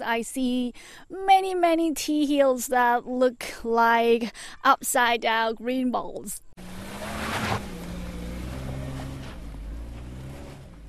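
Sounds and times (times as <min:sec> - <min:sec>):
speech: 0:00.0 - 0:06.5
sports car engine labouring uphill: 0:06.6 - 0:10.8.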